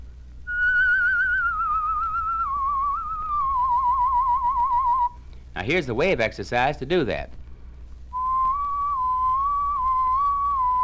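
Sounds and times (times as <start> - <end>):
low hum: 0.0 - 10.8
sustained human whistle with a wavering tremolo: 0.5 - 5.2, 8.2 - 10.8
speech: 5.6 - 7.4.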